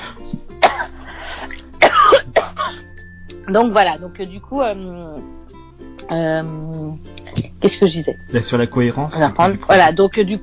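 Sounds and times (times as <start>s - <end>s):
person coughing with throat-clearing rasp: 0.1s - 2.8s
speech: 3.5s - 5.4s, 6.1s - 10.4s.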